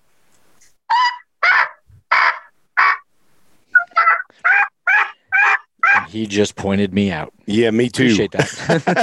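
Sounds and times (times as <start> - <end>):
raspy turkey yelps on a latex diaphragm mouth call: 0.9 - 3.1, 3.7 - 6.2
speech: 6.1 - 9.0
laughter: 8.0 - 9.0.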